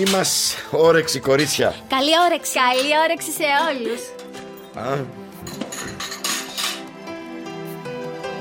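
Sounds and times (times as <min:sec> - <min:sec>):
speech: 0:00.0 - 0:05.2
dishes and cutlery clinking as food is served: 0:02.5 - 0:07.0.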